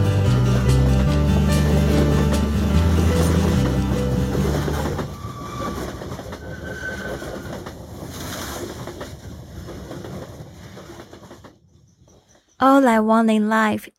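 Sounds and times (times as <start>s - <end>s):
train rattling on rails from Hamburg to Copenhagen: 0.0s - 12.6s
brief metallic squeals of a train: 4.7s - 7.6s
speech: 12.8s - 13.9s.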